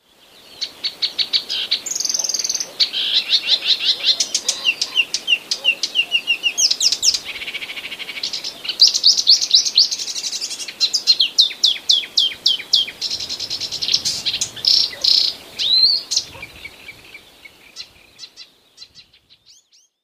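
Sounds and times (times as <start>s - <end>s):
marsh warbler mimicking common whitethroat calls: 1.5s - 19.2s.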